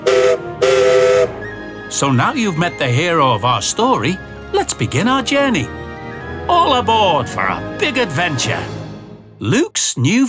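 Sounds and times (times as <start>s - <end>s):
steam whistle blasts from a small green narrow-gauge quarry engine: 0.0s - 1.6s
speech: 2.0s - 5.8s, 6.5s - 8.8s, 9.4s - 10.2s.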